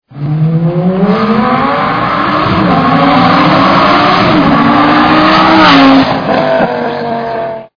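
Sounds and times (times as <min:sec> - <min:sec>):
Lamborghini Gallardo sports car engine: 0:00.1 - 0:07.7.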